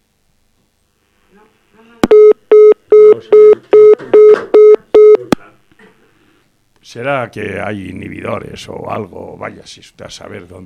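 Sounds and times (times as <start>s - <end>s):
faint noise: 0.0s - 10.6s
speech: 1.3s - 2.1s, 3.1s - 3.6s, 6.9s - 10.6s
telephone line beeps as a call rings out and is cut off: 2.0s - 5.3s.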